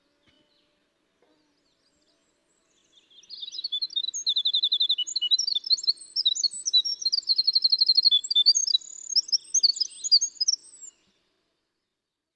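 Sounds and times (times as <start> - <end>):
winter wren singing flute-like song: 2.8 - 11.0.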